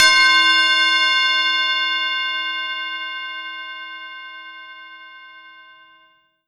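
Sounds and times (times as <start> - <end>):
Korg TR Rack tubular bell C6 note: 0.0 - 2.7.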